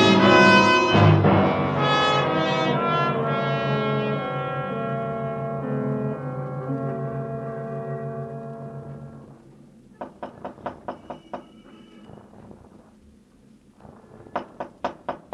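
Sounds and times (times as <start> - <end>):
sustained musical tone: 0.0 - 9.6
knocking on a door: 10.0 - 11.6, 14.3 - 15.3.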